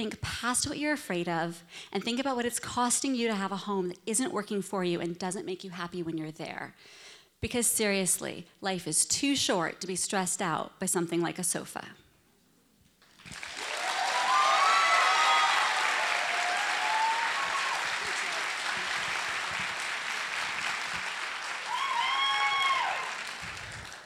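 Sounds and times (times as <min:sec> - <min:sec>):
speech: 0:00.0 - 0:12.0
crowd applauding: 0:13.0 - 0:24.0
crowd high whoops and cheers: 0:13.5 - 0:19.8, 0:21.4 - 0:23.5.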